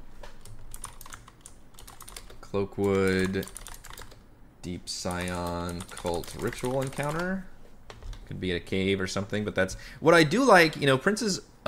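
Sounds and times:
light keystrokes on a computer keyboard: 0:00.4 - 0:04.2, 0:05.1 - 0:08.2
speech: 0:02.5 - 0:03.6, 0:04.6 - 0:07.5, 0:08.3 - 0:11.6.

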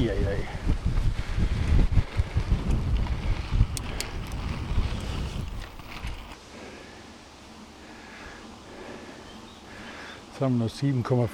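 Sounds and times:
strong wind buffeting the microphone outdoors: 0:00.0 - 0:06.4
speech: 0:10.4 - 0:11.3.

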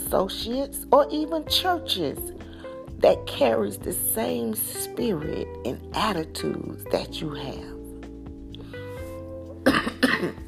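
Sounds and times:
speech: 0:00.1 - 0:07.8
rough coughs: 0:09.6 - 0:10.4.

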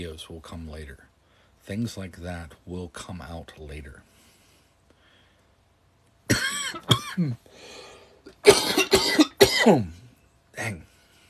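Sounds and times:
speech: 0:00.0 - 0:04.1, 0:06.7 - 0:10.0, 0:10.6 - 0:10.9
raspy breath in: 0:04.1 - 0:05.6, 0:07.4 - 0:08.3
harsh coughing fit: 0:06.3 - 0:07.5, 0:08.3 - 0:10.0.

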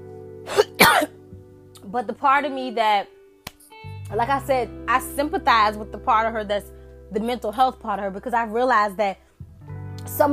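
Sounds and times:
person coughing: 0:00.5 - 0:01.2
speech: 0:01.9 - 0:03.2, 0:04.1 - 0:09.2, 0:10.0 - 0:10.3.

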